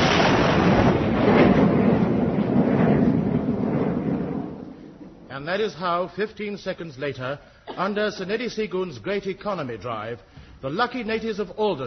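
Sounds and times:
guided missile launch roar: 0.0 - 5.3
speech: 5.5 - 11.8.

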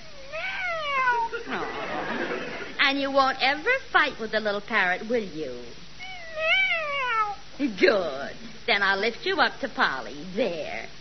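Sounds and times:
pet cat meowing: 0.0 - 1.3, 6.0 - 7.5
low hum: 0.0 - 10.9
laughter: 1.3 - 2.8
speech: 2.9 - 5.8, 7.6 - 10.9.

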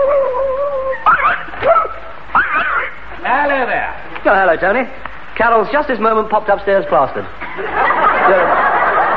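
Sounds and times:
watchdog whimpering in a high whine: 0.0 - 3.0
watchdog yipping: 0.9 - 3.0
speech: 3.4 - 8.6
laughter: 7.4 - 9.1.

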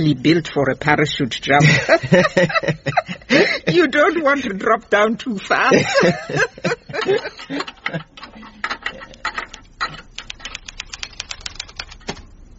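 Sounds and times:
speech: 0.0 - 8.1
laughter: 1.6 - 3.9, 5.7 - 8.2
typing a report: 9.1 - 12.3.

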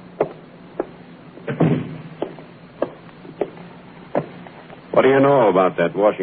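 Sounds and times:
sharp knocks or footfalls: 0.2 - 4.4
door pushed shut with a clunk and rattle: 1.5 - 2.1
speech: 5.0 - 6.2.

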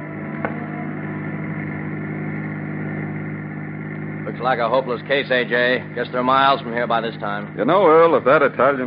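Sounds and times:
police car engine droning while cruising through city streets: 0.0 - 8.8
speech: 4.4 - 8.8.

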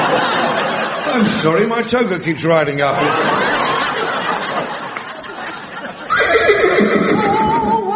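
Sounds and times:
laughter: 0.0 - 1.7, 2.8 - 7.9
speech: 1.2 - 3.8
unicorn giving a horse-like neigh: 6.1 - 7.8.

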